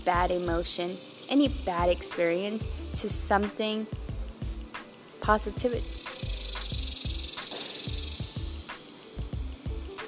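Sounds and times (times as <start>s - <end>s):
speech: 0.0s - 4.1s, 5.3s - 6.0s
cicadas buzzing: 0.0s - 10.0s.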